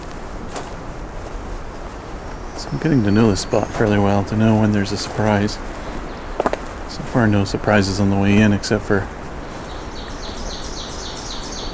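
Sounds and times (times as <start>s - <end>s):
constant loud broadband noise: 0.0s - 11.7s
magnolia warbler singing: 1.6s - 11.7s
speech: 2.6s - 5.8s, 7.1s - 9.2s.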